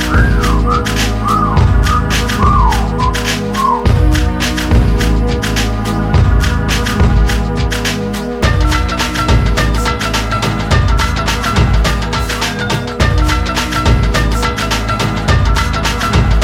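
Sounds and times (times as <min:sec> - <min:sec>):
person whistling short gliding phrases: 0:00.0 - 0:04.1
loud thumping hip-hop beat: 0:00.0 - 0:16.4.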